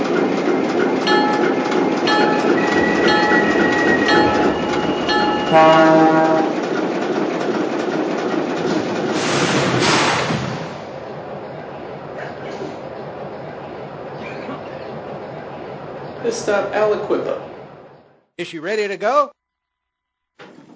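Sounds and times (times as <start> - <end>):
train rolling along the rails on track one: 0.0 - 18.3
train horn: 5.1 - 6.6
speech: 5.5 - 6.2, 16.3 - 17.5, 18.4 - 19.4
hissing burst: 9.1 - 11.0.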